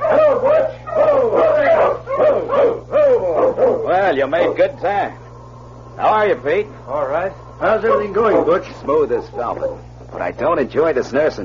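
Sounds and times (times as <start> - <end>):
team of sled dogs barking and yelping on a trail: 0.0 - 4.8, 7.6 - 9.9
speech: 4.1 - 5.2, 6.0 - 11.4.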